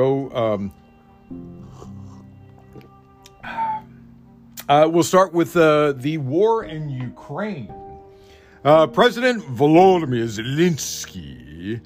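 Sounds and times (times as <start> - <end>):
speech: 0.0 - 2.0, 4.7 - 7.8, 8.6 - 11.8
person sipping coffee: 1.6 - 3.5.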